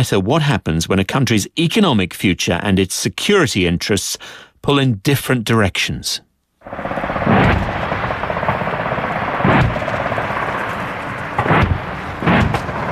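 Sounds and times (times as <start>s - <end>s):
speech: 0.0s - 7.7s
heavy blasts from a live-fire military training exercise: 6.6s - 12.9s
constant loud deep rumble of a live-fire military exercise: 6.7s - 12.9s.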